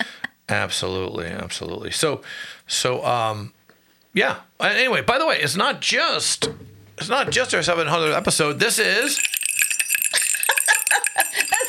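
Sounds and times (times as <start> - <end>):
speech: 0.5 - 3.6, 4.2 - 9.4
small jingle bell tinkling: 8.0 - 11.6
people laughing: 10.2 - 11.6.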